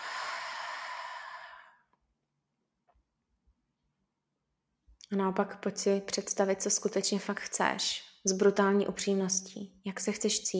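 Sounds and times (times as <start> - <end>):
deep exhale during a guided breathing exercise: 0.0 - 1.8
speech: 5.1 - 10.5.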